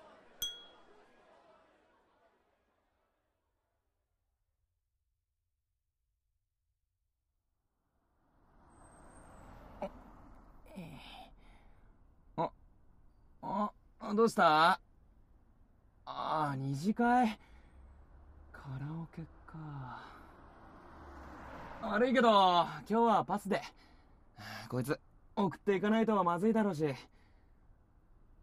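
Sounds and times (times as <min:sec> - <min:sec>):
glasses clinking in a toast: 0:00.4 - 0:00.8
speech: 0:14.1 - 0:14.8, 0:16.1 - 0:17.5, 0:18.7 - 0:20.2, 0:21.8 - 0:27.2.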